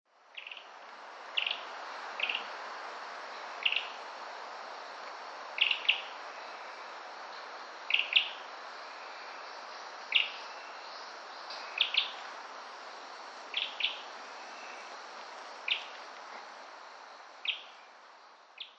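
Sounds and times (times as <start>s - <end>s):
Ryukyu Robin calling: 0.3s - 0.7s, 1.4s - 2.5s, 3.6s - 4.0s, 5.6s - 6.6s, 7.9s - 8.5s, 10.0s - 12.2s, 13.5s - 14.9s, 15.6s - 16.1s, 17.4s - 18.0s, 18.6s - 18.7s.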